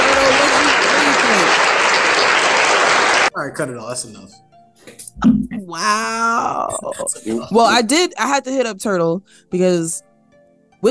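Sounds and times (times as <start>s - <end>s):
laughter: 0.0s - 3.2s, 6.6s - 7.8s
loud dense applause of many hands clapping: 0.0s - 3.3s
speech: 3.4s - 10.1s.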